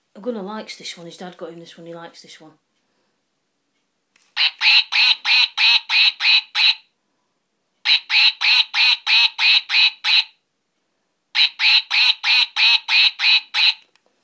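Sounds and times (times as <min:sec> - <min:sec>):
speech: 0:00.2 - 0:02.6, 0:08.9 - 0:10.4, 0:11.4 - 0:13.9
furry dog toy duck quacking: 0:04.4 - 0:06.9, 0:07.8 - 0:10.4, 0:11.3 - 0:13.9.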